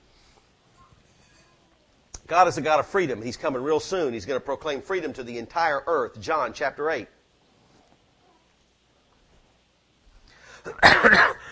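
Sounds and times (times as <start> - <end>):
speech: 2.3 - 7.2
harsh cough: 10.7 - 11.5.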